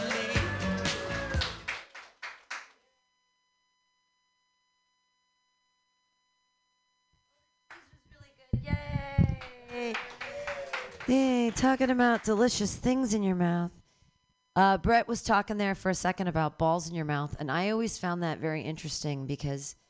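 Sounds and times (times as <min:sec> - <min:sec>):
audience clapping: 0:00.0 - 0:02.8, 0:07.7 - 0:07.9, 0:09.2 - 0:12.8
cheering voices: 0:08.7 - 0:12.5
speech: 0:11.1 - 0:13.8, 0:14.6 - 0:19.8.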